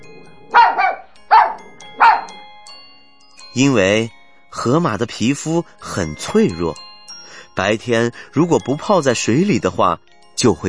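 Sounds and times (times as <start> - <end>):
small dog barking: 0.5 - 2.3
speech: 3.6 - 6.9, 7.6 - 10.6.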